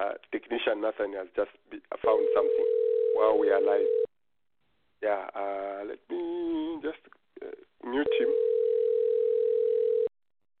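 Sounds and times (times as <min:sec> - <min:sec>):
speech: 0:00.1 - 0:04.1, 0:05.0 - 0:07.2, 0:07.8 - 0:08.5
steady electronic telephone tone on the line: 0:02.3 - 0:04.1, 0:08.1 - 0:10.1.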